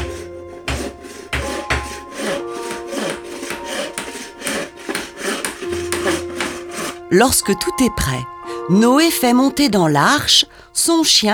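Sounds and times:
wooden planks being sawn for building a boat: 0:00.0 - 0:07.9
faint tonal tones: 0:00.0 - 0:11.3
speech: 0:07.1 - 0:11.3.

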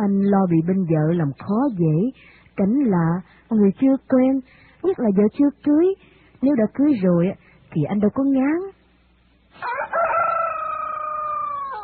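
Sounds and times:
speech: 0:00.0 - 0:08.8
rooster crowing: 0:09.6 - 0:11.8.

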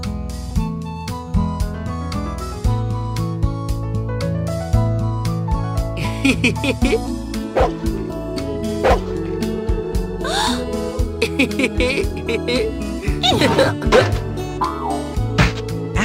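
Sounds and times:
music: 0:00.0 - 0:16.0
laughter: 0:06.0 - 0:07.7, 0:10.3 - 0:14.1
big Newfoundland dog barking: 0:07.5 - 0:07.8, 0:08.8 - 0:09.2
Newfoundland dog short yips: 0:07.6 - 0:07.8, 0:08.8 - 0:09.1.

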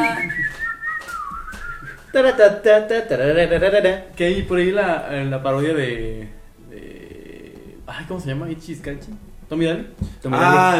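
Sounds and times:
person whistling a tune: 0:00.0 - 0:02.2
speech: 0:02.1 - 0:07.0, 0:07.9 - 0:10.7.

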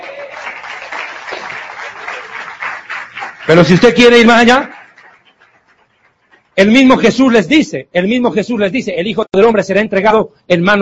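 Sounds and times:
audience applause during a sermon: 0:00.0 - 0:06.5
speech: 0:03.5 - 0:04.8, 0:06.6 - 0:10.8.

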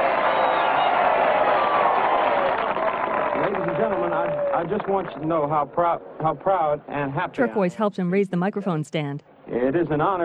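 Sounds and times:
large crowd cheering and applauding: 0:00.0 - 0:05.6
speech: 0:04.3 - 0:10.2.

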